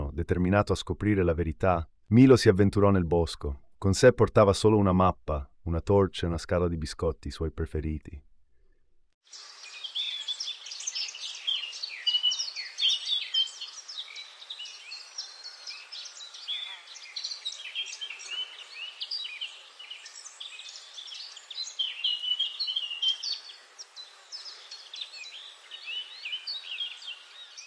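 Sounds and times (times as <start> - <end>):
speech: 0.2 - 8.3
dense chorus of birds chirping and twittering: 9.3 - 27.6
soft steady rustling of leaves: 9.3 - 27.6.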